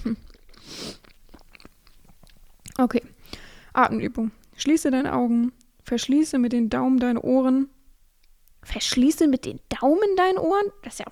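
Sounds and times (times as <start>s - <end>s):
speech: 0.0s - 0.3s, 2.8s - 3.1s, 3.8s - 7.8s, 8.6s - 11.1s
person chewing a piece of banana: 0.0s - 3.4s.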